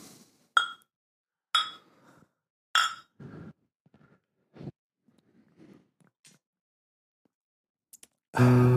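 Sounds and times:
glasses clinking in a toast: 0.6s - 0.8s, 1.6s - 1.9s, 2.8s - 3.1s
speech: 8.4s - 8.6s.

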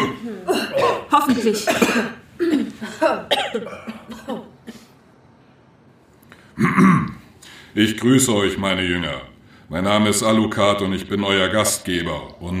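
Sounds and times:
person coughing from too much smoke: 0.0s - 4.9s, 6.6s - 7.2s
speech: 1.2s - 2.2s, 7.8s - 12.5s.

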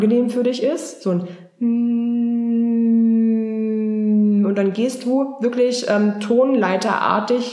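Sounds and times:
speech: 0.0s - 2.2s, 4.6s - 7.5s
person humming one long sustained note: 1.6s - 4.4s.

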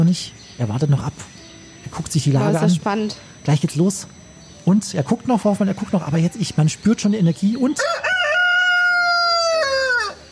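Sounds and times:
speech: 0.0s - 8.1s
rooster crowing: 7.7s - 10.3s.

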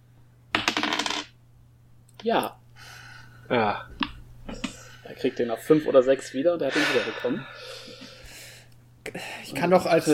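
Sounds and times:
dice rolled during a tabletop role-playing game: 0.6s - 1.3s
speech: 2.2s - 2.6s, 3.5s - 4.0s, 5.1s - 7.8s, 9.1s - 10.1s.

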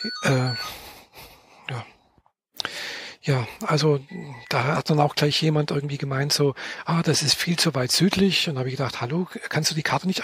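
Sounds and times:
person murmuring and sighing: 0.0s - 0.8s, 3.3s - 5.0s
speech: 0.0s - 0.8s, 1.7s - 1.9s, 3.2s - 10.2s
electronic phone ringtone: 0.0s - 1.0s.

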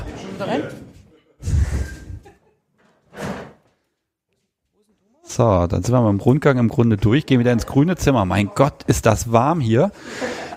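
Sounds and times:
speech: 0.4s - 0.8s, 5.4s - 10.5s
laughter: 1.1s - 2.7s, 9.8s - 10.5s
house door opening and swinging shut with a heavy thud: 2.8s - 3.8s.

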